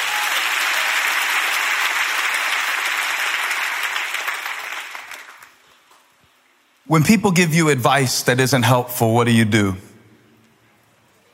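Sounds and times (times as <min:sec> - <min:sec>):
roomful of people clapping their hands: 0:00.0 - 0:06.1
speech: 0:06.9 - 0:09.9.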